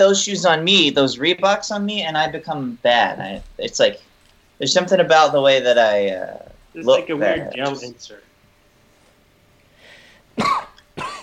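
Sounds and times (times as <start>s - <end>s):
speech: 0.0s - 8.3s
person coughing harshly: 10.4s - 11.2s.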